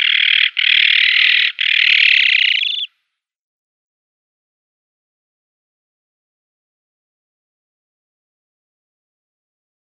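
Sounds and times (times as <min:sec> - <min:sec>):
Azure-winged magpie giving harsh rasping calls: 0:00.0 - 0:02.9.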